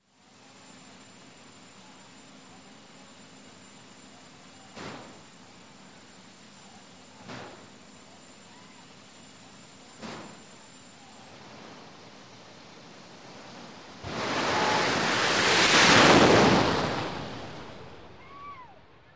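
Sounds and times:
dragster racing by: 14.0s - 18.2s.

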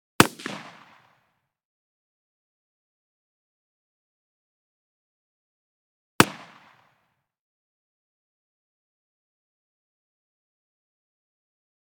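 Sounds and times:
.308 rifle shot with long tail: 0.2s - 1.2s, 6.2s - 6.9s.

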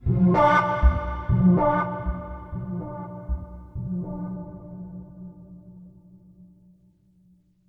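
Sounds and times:
mysterious string music: 0.0s - 5.8s.

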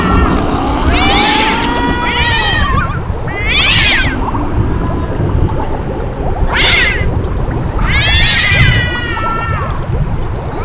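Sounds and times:
steady low rumbling noise: 0.0s - 10.6s
cats yowling: 0.9s - 4.2s, 6.5s - 7.1s, 7.8s - 9.8s.

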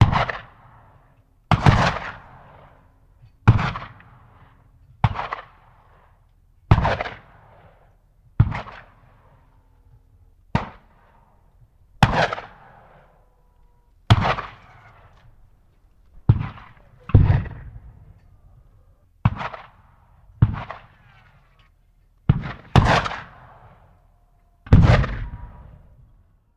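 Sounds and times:
black powder cannon firing: 0.0s - 0.7s, 1.5s - 5.9s, 6.7s - 9.1s, 12.0s - 13.1s, 14.1s - 18.3s, 19.2s - 21.4s, 22.3s - 23.9s, 24.7s - 26.1s.

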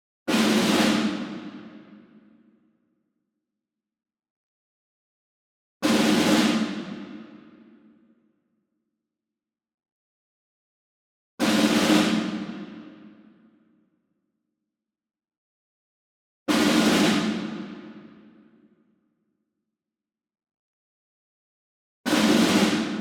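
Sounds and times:
ensemble snare drum group roll: 0.3s - 2.0s, 5.8s - 7.5s, 11.4s - 13.1s, 16.5s - 18.2s, 22.1s - 22.9s.

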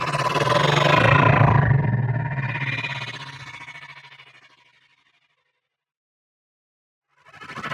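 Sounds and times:
small slow neon whoosh with granular tremors: 0.2s - 3.5s.

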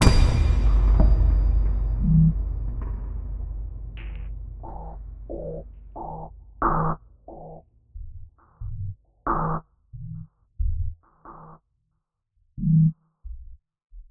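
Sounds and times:
cinematic bumpy bang metal impacts: 0.0s - 7.5s.

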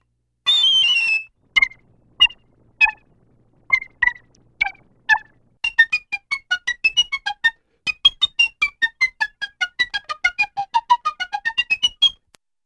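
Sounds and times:
piccolo playing various short cartoon trills: 0.5s - 12.3s.

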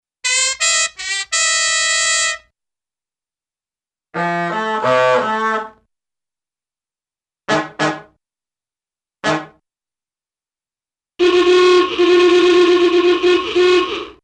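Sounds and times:
cartoon musical car horn: 0.2s - 2.5s, 4.2s - 5.8s, 11.2s - 14.2s.

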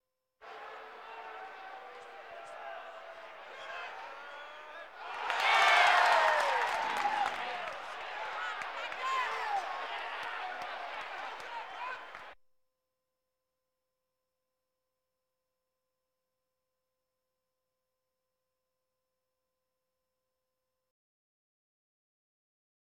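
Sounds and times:
sports crowd: 0.4s - 12.4s.

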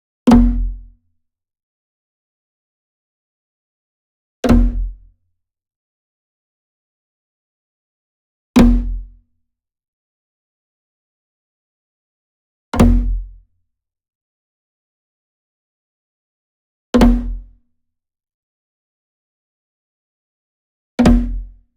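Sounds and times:
wood drum flam slap on floor: 4.5s - 4.9s, 8.6s - 9.0s, 12.8s - 13.2s, 17.0s - 17.4s, 21.0s - 21.4s.

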